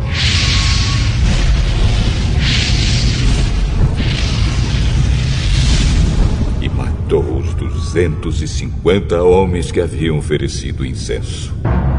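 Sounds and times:
loud roaring fire blast: 0.0 - 8.8
speech: 8.0 - 11.8.

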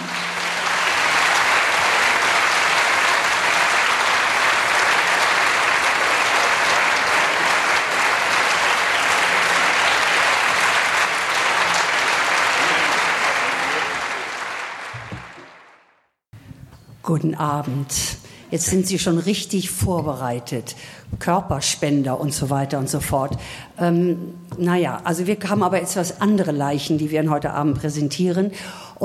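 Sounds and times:
large audience applause: 0.0 - 16.1
speech: 17.1 - 29.0.

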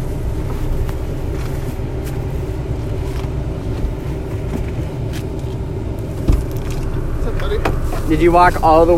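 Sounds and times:
car engine as the car pulls up: 0.0 - 8.9
road rumble of a car: 0.0 - 8.9
speech: 8.2 - 8.9.

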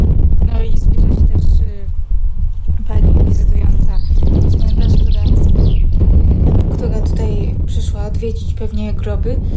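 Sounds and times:
low rumble of wind or handling noise: 0.0 - 9.5
chaffinch singing outdoors: 3.6 - 6.1.

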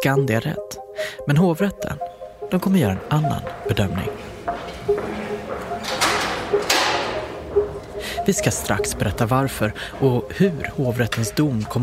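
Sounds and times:
speech: 0.0 - 5.2, 8.2 - 11.8
footsteps indoors in police headquarters building: 1.9 - 11.8
doors sliding and thudding in police headquarters building in Stockholm: 3.0 - 11.3.

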